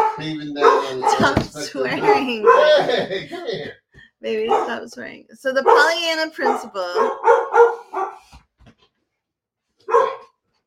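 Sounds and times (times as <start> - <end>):
dog barking: 0.0 - 3.0, 4.4 - 4.8, 5.6 - 8.3, 9.8 - 10.4
laughter: 0.2 - 3.8
speech: 0.2 - 7.8.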